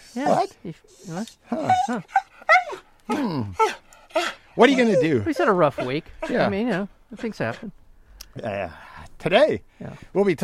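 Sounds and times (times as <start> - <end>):
dog whimpering and growling: 0.0 - 6.8
speech: 0.1 - 2.3, 3.1 - 7.8, 8.4 - 10.4.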